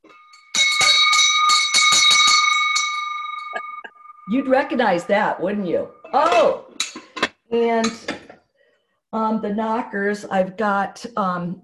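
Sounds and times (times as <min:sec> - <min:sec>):
family-heirloom handbell struck rapidly and ringing: 0:00.1 - 0:04.4
speech: 0:04.3 - 0:06.7, 0:07.5 - 0:08.2, 0:09.1 - 0:11.6.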